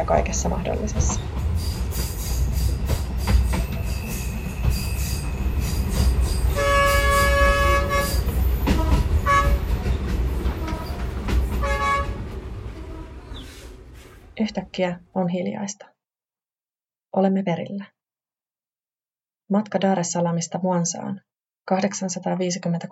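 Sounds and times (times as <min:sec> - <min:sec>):
speech: 0:00.0 - 0:01.7, 0:14.4 - 0:16.0, 0:17.1 - 0:18.0, 0:19.5 - 0:22.9
low rumble of the moving passenger train: 0:00.0 - 0:14.8
passenger train wheels squealing on the rails: 0:01.1 - 0:11.8, 0:13.2 - 0:14.1.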